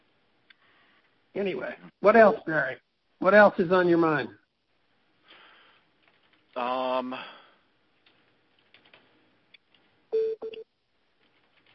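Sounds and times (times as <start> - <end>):
speech: 1.4 - 4.4, 6.6 - 7.3
phone ringing with an electronic melodic tone from an incoming call: 10.1 - 10.6
short beeping bursts: 10.1 - 10.6.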